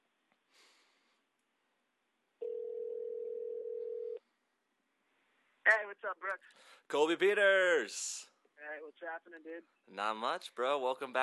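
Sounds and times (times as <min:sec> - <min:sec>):
soft breathy sniff: 0:00.5 - 0:01.3
electronic ringing tone of an outgoing phone call: 0:02.4 - 0:04.2
speech: 0:05.8 - 0:11.2.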